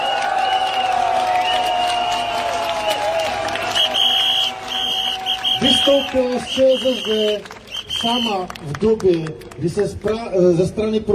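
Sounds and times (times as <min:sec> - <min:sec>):
people cheering: 0:00.0 - 0:08.8
large crowd clapping: 0:00.0 - 0:10.8
sustained whistle-like tones: 0:03.7 - 0:08.4
speech: 0:05.8 - 0:11.1.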